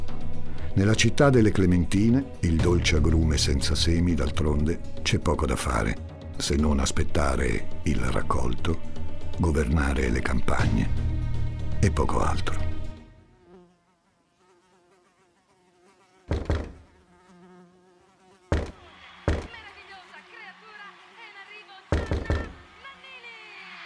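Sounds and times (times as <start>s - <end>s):
speech: 0.8s - 11.1s, 11.8s - 12.7s
housefly buzzing: 12.7s - 23.8s
loud sharp knocks on a door: 16.3s - 16.9s, 18.5s - 19.6s, 21.9s - 22.6s.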